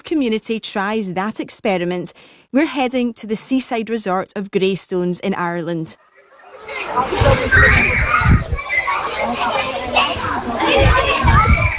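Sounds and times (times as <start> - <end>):
speech: 0.2 - 8.4
children playing in a primary school playground in an Irish seaside town: 6.0 - 11.7.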